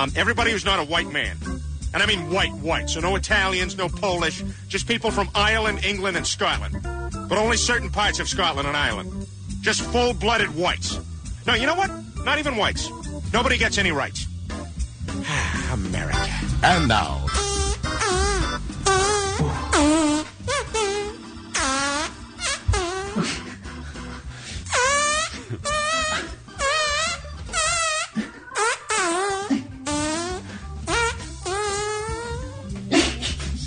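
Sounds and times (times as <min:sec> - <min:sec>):
speech: 0:00.0 - 0:14.3, 0:15.2 - 0:17.5
melody performed with farts: 0:16.6 - 0:23.6, 0:24.6 - 0:33.6.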